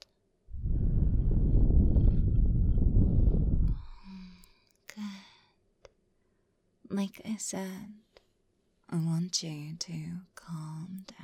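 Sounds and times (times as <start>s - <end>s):
deep breath during a medical examination: 0.6s - 4.5s
speech: 7.0s - 8.0s, 8.9s - 11.2s.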